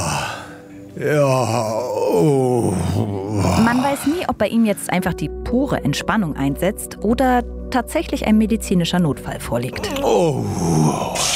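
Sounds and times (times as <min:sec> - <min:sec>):
man groaning and moaning with each breath in a sauna: 0:00.0 - 0:04.2, 0:09.8 - 0:11.3
speech: 0:01.0 - 0:02.4, 0:03.9 - 0:11.3.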